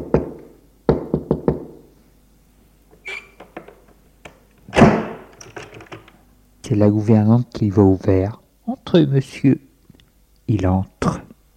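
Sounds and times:
knocking on a hotel room door: 0.0s - 1.8s
speech: 6.7s - 9.6s, 10.5s - 11.3s.

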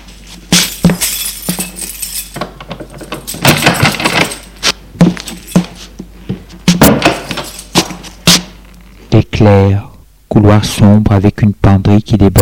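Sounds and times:
keys jangling and clinking: 0.4s - 5.9s, 6.8s - 8.2s
door being unlocked and opened: 1.6s - 4.6s, 6.8s - 7.9s
speech: 9.4s - 9.9s, 10.6s - 12.4s.

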